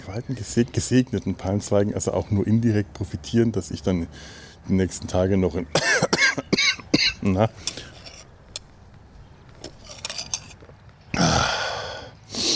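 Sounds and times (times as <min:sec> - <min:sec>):
faint scattered sounds: 0:00.0 - 0:11.2
speech: 0:00.1 - 0:06.5, 0:07.2 - 0:07.9
person with a lingering chest illness coughing: 0:05.8 - 0:07.3.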